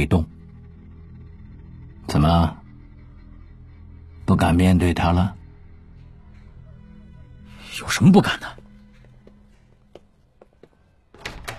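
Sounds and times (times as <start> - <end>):
speech: 0.0 - 0.3, 2.1 - 2.6, 4.3 - 5.4, 7.8 - 8.6
safe house door opening: 11.0 - 11.5.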